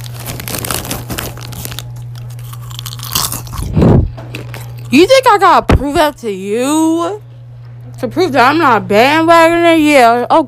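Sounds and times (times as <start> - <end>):
crunchy chewing of food: 0.0 - 5.0
low electrical hum: 0.0 - 10.4
speech: 4.9 - 7.3, 8.0 - 10.4.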